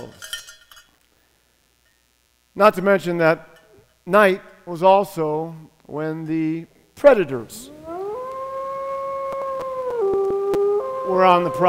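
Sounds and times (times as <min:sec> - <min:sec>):
speech: 0:02.6 - 0:07.8, 0:11.1 - 0:11.6
wolf howling at night: 0:07.5 - 0:11.6.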